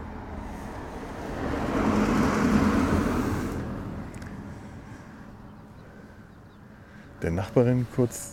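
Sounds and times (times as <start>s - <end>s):
car passing by outdoors: 0.0s - 5.5s
speech: 7.2s - 8.3s.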